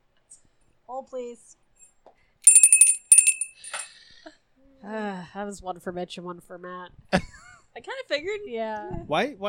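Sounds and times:
speech: 0.9 - 1.6, 4.2 - 9.4
small bicycle-style bell ringing: 2.4 - 3.9.

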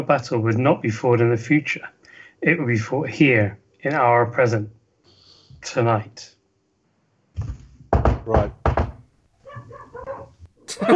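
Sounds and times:
speech: 0.0 - 4.8, 5.6 - 6.4, 8.2 - 8.6, 10.7 - 10.9
dog barking and whining: 9.4 - 10.5.

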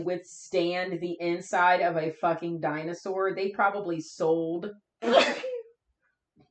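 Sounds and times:
speech: 0.0 - 5.5
sneeze: 5.0 - 5.6.

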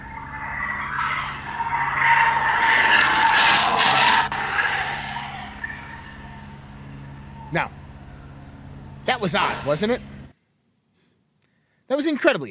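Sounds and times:
car tires skidding and squealing: 0.0 - 7.5
sharp scrape-like break: 2.1 - 4.8
speech: 7.5 - 7.8, 9.2 - 10.2, 12.0 - 12.4.

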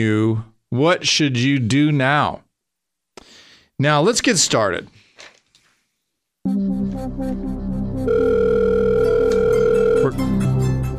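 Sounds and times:
speech: 0.0 - 2.4, 3.8 - 5.0, 6.4 - 8.4
telephone dial tone: 8.1 - 10.1.

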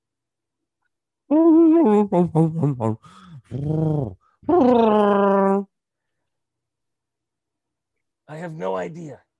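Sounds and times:
speech: 1.3 - 5.7, 8.3 - 9.2
man's vocal impression of a Wookiee growl: 1.6 - 5.6.

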